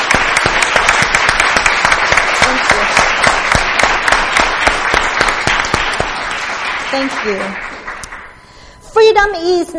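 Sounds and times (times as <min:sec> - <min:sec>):
audience applause at a worship gathering: 0:00.0 - 0:08.4
speech: 0:06.9 - 0:07.7, 0:09.0 - 0:09.7.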